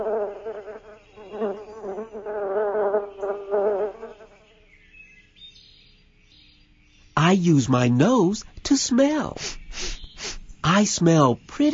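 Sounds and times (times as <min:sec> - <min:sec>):
bees buzzing: 0:00.0 - 0:04.5
speech: 0:07.2 - 0:09.6, 0:10.8 - 0:11.7.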